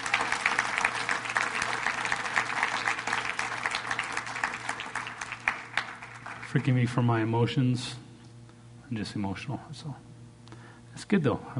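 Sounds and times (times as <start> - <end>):
church audience applauding: 0.0 - 7.0
faint low hum: 0.0 - 11.5
speech: 6.5 - 8.0, 8.9 - 10.1, 11.0 - 11.5.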